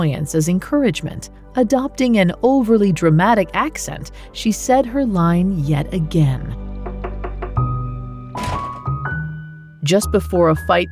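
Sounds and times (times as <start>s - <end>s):
speech: 0.0s - 6.6s, 9.8s - 10.9s
fist pounding on a door: 6.9s - 9.2s.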